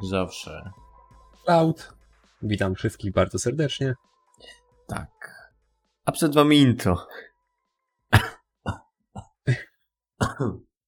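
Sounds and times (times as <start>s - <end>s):
speech: 0.0s - 0.8s, 1.5s - 5.4s, 6.1s - 7.3s, 10.3s - 10.6s
person coughing harshly: 8.1s - 10.7s.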